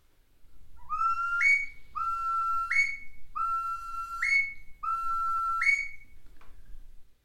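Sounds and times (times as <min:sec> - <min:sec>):
bird-call whistle imitating a curlew: 0:00.8 - 0:06.2.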